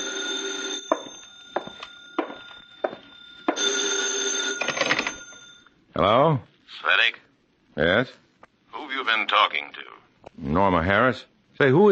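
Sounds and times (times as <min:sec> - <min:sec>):
old-style telephone bell ringing: 0:00.0 - 0:05.8
footsteps approaching: 0:00.9 - 0:03.7
speech: 0:06.0 - 0:07.2, 0:07.8 - 0:08.2, 0:10.8 - 0:11.9.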